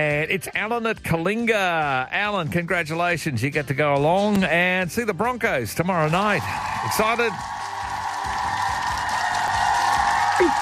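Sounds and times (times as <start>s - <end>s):
speech: 0.0s - 7.6s
many hands clapping: 6.1s - 10.6s
crowd cheering: 6.2s - 10.6s.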